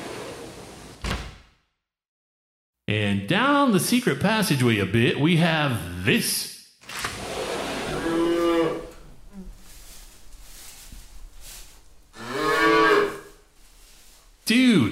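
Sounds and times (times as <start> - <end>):
speech: 2.9 - 7.1
cows mooing in a grassy field: 7.4 - 9.2, 12.2 - 13.4.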